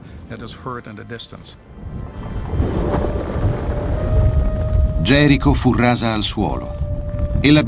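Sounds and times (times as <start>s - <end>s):
speech: 0.3s - 2.0s, 5.0s - 6.8s, 7.4s - 7.6s
deep rolling earthquake rumble: 1.6s - 7.6s.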